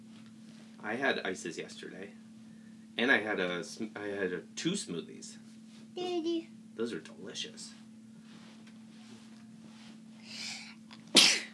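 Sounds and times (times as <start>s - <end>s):
faint steady hum: 0.0s - 11.5s
speech: 0.8s - 2.3s, 3.0s - 7.8s
person sneezing: 10.4s - 11.5s.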